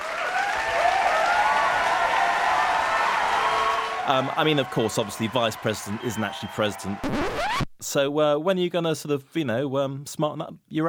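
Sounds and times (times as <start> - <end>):
group applauding: 0.0 - 7.2
speech: 4.1 - 10.8.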